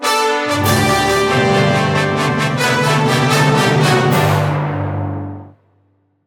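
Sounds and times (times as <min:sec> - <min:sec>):
brass fanfare: 0:00.0 - 0:05.5
percussion: 0:00.5 - 0:05.5.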